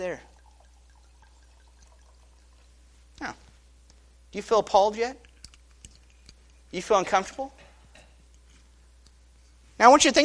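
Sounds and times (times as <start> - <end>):
speech: 0.0 - 0.3, 4.3 - 5.2, 6.7 - 7.6, 9.8 - 10.2
wine from a freshly opened bottle pouring into a glass in a church: 0.0 - 3.2
low hum: 0.0 - 10.2.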